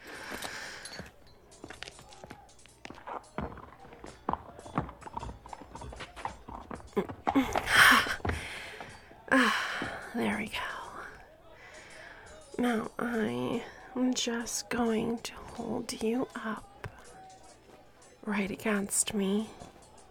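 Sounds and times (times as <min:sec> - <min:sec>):
horse hooves clip-clopping: 0:00.3 - 0:09.0
speech: 0:07.0 - 0:07.8, 0:09.3 - 0:10.7, 0:12.6 - 0:16.7, 0:18.3 - 0:19.6.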